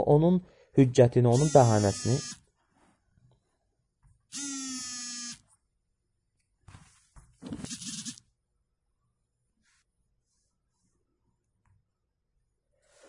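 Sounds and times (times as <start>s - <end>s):
speech: 0.0s - 2.4s
incoming phone call ringing buzz: 1.4s - 2.4s, 4.3s - 5.5s, 7.7s - 8.2s
rough buzzing bursts: 4.3s - 5.4s, 7.7s - 8.2s.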